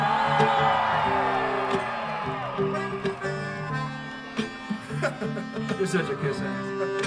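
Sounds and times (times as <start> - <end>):
large crowd yelling and cheering at a live outdoor concert: 0.0 - 5.0
speech: 5.8 - 6.9.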